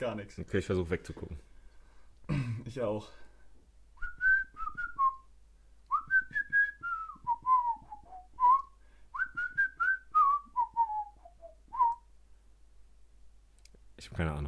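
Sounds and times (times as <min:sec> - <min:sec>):
speech: 0:00.0 - 0:01.5, 0:02.7 - 0:03.2, 0:14.0 - 0:14.4
person whistling a tune: 0:04.0 - 0:05.3, 0:05.9 - 0:12.1.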